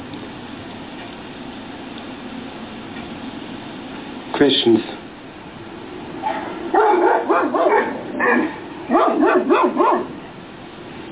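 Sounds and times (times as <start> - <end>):
speech: 4.4 - 5.0
dog barking with high yelping barks: 6.2 - 10.2.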